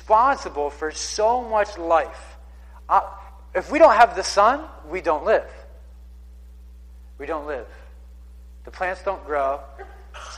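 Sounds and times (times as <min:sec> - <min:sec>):
speech: 0:00.1 - 0:05.6, 0:07.2 - 0:07.8, 0:08.7 - 0:10.3
single short sneeze with a faint lead-in breath: 0:09.8 - 0:10.3.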